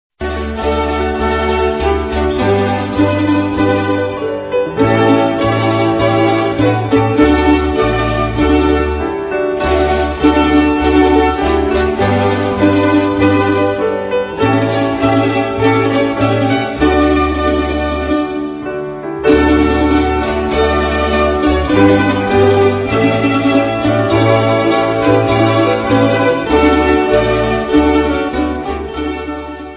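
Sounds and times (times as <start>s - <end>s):
mandolins: 0.2s - 29.7s.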